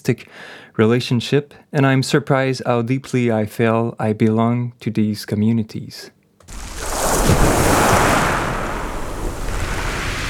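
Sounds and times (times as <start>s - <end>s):
speech: 0.0s - 6.7s
sea waves on the shore: 6.5s - 10.2s
wind rumble: 6.5s - 10.2s.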